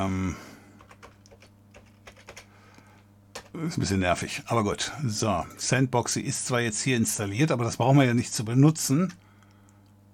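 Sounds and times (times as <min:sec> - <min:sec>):
speech: 0:00.0 - 0:00.5, 0:03.6 - 0:09.2
low electrical hum: 0:00.0 - 0:10.1
typing on a loud computer keyboard: 0:00.8 - 0:02.5.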